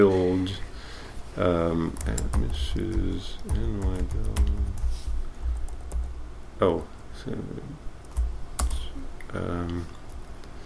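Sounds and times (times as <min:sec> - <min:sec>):
low room hum: 0:00.0 - 0:10.6
speech: 0:01.4 - 0:05.0, 0:06.6 - 0:07.9, 0:09.3 - 0:10.0
typing on a computer keyboard: 0:01.9 - 0:04.9, 0:08.1 - 0:08.9.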